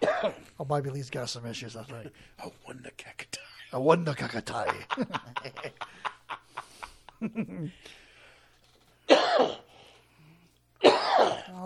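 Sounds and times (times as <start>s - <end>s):
coughing fit with short choppy coughs and harsh hacking coughs: 0.0s - 0.4s, 9.1s - 9.7s, 10.8s - 11.6s
speech: 0.2s - 6.4s, 7.2s - 8.0s, 11.5s - 11.6s
laughter: 4.2s - 7.8s.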